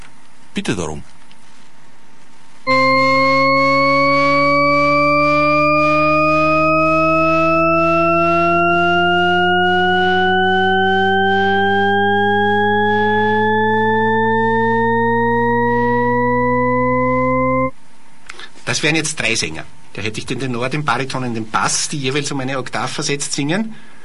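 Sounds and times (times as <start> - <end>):
speech: 0.6 - 1.2, 18.8 - 23.9
Shepard-style rising organ-like tone scale illusion: 2.7 - 17.8.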